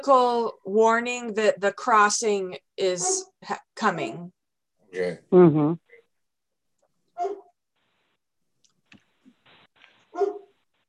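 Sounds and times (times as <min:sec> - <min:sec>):
speech: 0:00.0 - 0:05.8, 0:07.2 - 0:07.4, 0:10.2 - 0:10.4
dog barking: 0:07.2 - 0:07.5, 0:10.1 - 0:10.5.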